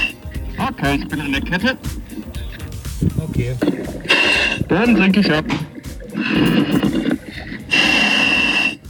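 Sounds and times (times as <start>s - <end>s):
harsh buzzing scuba regulator tone: 0.0s - 8.8s
speech: 0.7s - 2.2s, 3.2s - 5.7s
scuba diver breathing through an underwater radio link: 2.0s - 4.9s, 5.7s - 8.8s.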